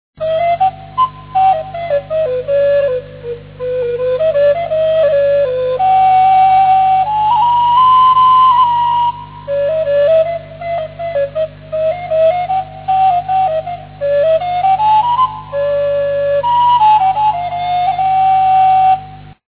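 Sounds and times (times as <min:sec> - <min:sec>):
flute: 0:00.2 - 0:19.4.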